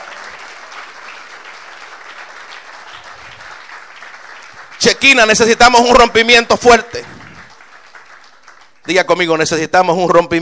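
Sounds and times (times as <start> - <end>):
church congregation applauding during a worship service: 0.0 - 10.4
speech: 4.8 - 7.1, 8.9 - 10.4.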